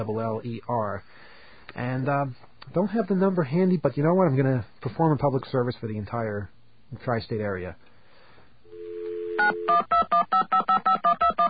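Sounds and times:
speech: 0:00.0 - 0:07.9, 0:09.4 - 0:11.1
telephone dial tone: 0:08.7 - 0:11.4
telephone keypad dialing beeps: 0:09.4 - 0:11.4.

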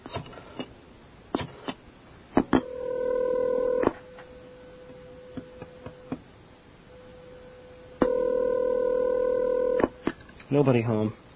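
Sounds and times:
steady quiet telephone line hum: 0:00.0 - 0:11.3
telephone electronic dial tones: 0:02.6 - 0:03.9, 0:08.0 - 0:09.9
speech: 0:10.6 - 0:11.2.

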